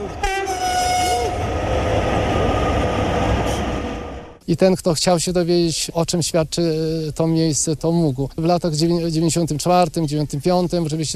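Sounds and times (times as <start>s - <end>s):
train horn blasting a multi-tone note: 0.0s - 1.5s
heavy rumble of passing train cars: 0.0s - 4.4s
speech: 4.5s - 11.1s.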